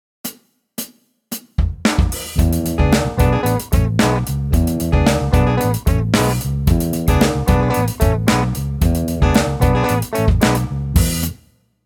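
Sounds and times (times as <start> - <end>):
Chicago blues guitar: 2.4 - 11.2.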